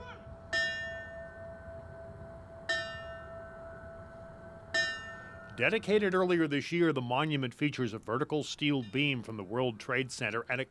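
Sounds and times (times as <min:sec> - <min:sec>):
low outdoor rumble: 0:00.0 - 0:10.6
fire bell clanging at a memorial ceremony: 0:00.4 - 0:06.0
speech: 0:05.6 - 0:10.6.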